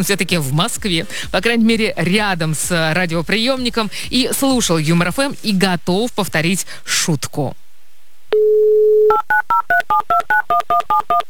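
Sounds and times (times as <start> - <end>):
speech: 0.0 - 7.6, 8.4 - 11.2
telephone dial tone: 8.3 - 9.6.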